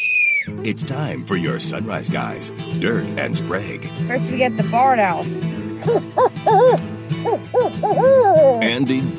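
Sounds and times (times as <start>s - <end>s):
speech: 0.4s - 9.1s
American woodcock calling nasal notes: 5.8s - 8.8s.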